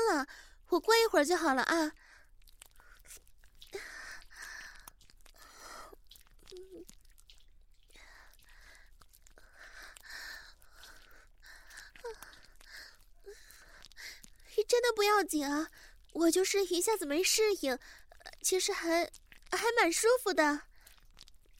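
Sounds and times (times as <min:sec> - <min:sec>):
speech: 0:00.2 - 0:02.0, 0:14.7 - 0:20.7
small wet mouth sounds: 0:01.9 - 0:21.5
soft breathy panting and gasping with voiced catches: 0:02.0 - 0:06.8, 0:07.8 - 0:14.6.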